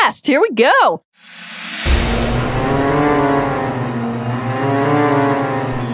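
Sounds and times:
speech: 0:00.1 - 0:01.4
steam train sound effect burst: 0:01.2 - 0:05.8.

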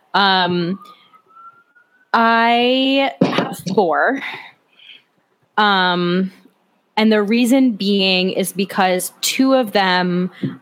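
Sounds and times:
speech: 0:00.2 - 0:01.0, 0:02.1 - 0:04.5, 0:05.6 - 0:06.4, 0:07.0 - 0:10.6
police siren wailing: 0:00.2 - 0:02.4.

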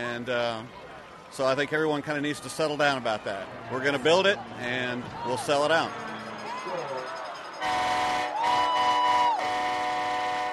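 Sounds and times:
speech: 0:00.0 - 0:06.1
dense noisy stadium crowd: 0:00.0 - 0:10.5
train horn blasting in a stadium visitors section: 0:07.6 - 0:10.5.

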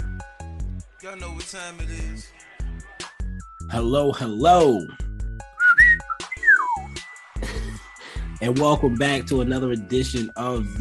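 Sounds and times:
speech: 0:01.0 - 0:02.4, 0:03.7 - 0:05.0, 0:08.4 - 0:10.8
person whistling: 0:05.6 - 0:07.0
laughter: 0:07.3 - 0:08.3.

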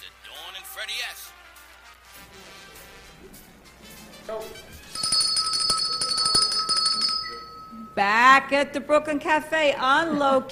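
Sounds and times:
speech: 0:00.8 - 0:01.4, 0:04.3 - 0:04.8, 0:08.0 - 0:10.4
bright piercing bell ringing: 0:04.8 - 0:08.5.

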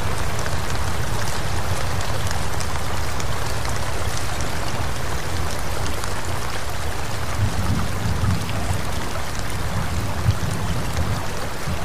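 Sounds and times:
steady rain falling in a forest: 0:00.0 - 0:11.8.

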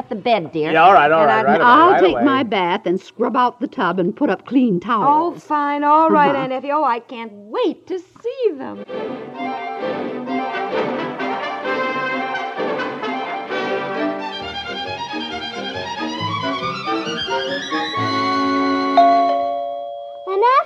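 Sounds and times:
speech: 0:00.0 - 0:10.1
busy orchestral music with rising, swooping phrases: 0:08.8 - 0:19.2
doorbell chime: 0:19.0 - 0:20.6.

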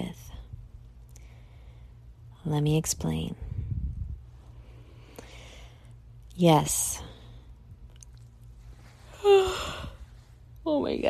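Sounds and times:
speech: 0:02.5 - 0:03.4, 0:06.4 - 0:07.1, 0:10.6 - 0:11.0
person yawning: 0:09.2 - 0:10.0.

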